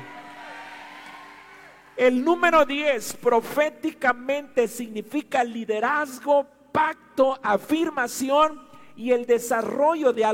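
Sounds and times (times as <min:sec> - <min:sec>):
audience shouting amen: 0:00.0 - 0:02.0
speech: 0:02.0 - 0:10.3.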